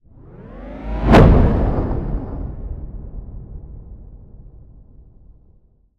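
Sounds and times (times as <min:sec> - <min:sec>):
swell to impact: 0:00.1 - 0:04.3.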